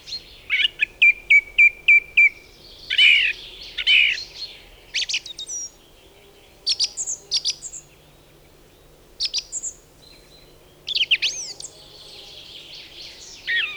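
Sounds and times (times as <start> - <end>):
song thrush singing in a spruce forest: 0.0 - 5.9, 9.2 - 13.7.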